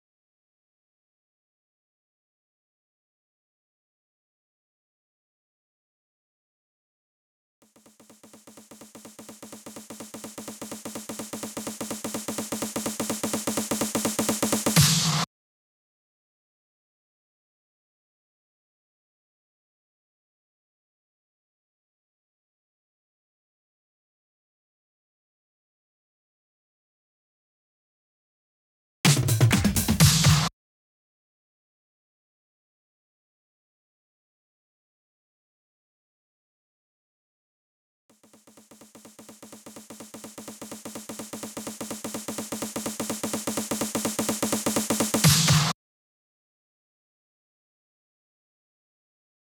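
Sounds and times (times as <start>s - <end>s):
future house drum fills in F: 7.7s - 15.3s, 29.1s - 30.5s, 38.3s - 45.8s.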